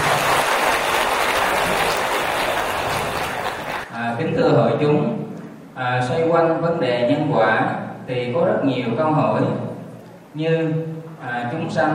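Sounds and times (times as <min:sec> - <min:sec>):
Buddhist audience applauding to welcome a nun: 0:00.0 - 0:03.9
speech: 0:04.4 - 0:05.2, 0:05.8 - 0:09.6, 0:10.3 - 0:11.9.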